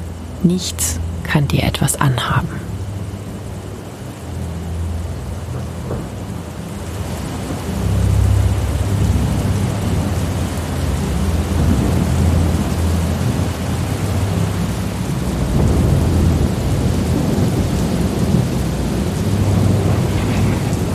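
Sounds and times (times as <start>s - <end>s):
steady rain at night: 0.0s - 20.9s
speech: 0.4s - 2.7s
deep rolling thunder at night: 5.3s - 20.9s.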